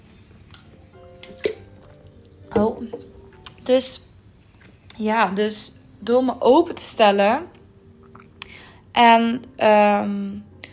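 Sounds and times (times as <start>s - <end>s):
faint hum: 0.0s - 10.7s
speech: 2.6s - 3.1s, 3.7s - 4.1s, 5.0s - 7.6s, 9.0s - 10.5s
person sipping a drink: 8.0s - 8.7s.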